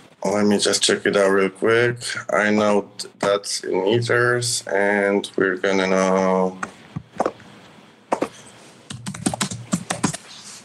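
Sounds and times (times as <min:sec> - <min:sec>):
speech: 0:00.2 - 0:06.7
computer keyboard typing: 0:08.9 - 0:10.2.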